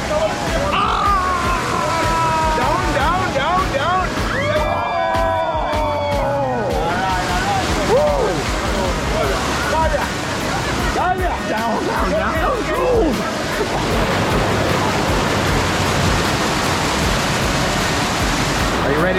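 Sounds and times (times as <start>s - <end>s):
people's voices: 0.0s - 14.2s
waterfall rushing: 0.0s - 19.1s.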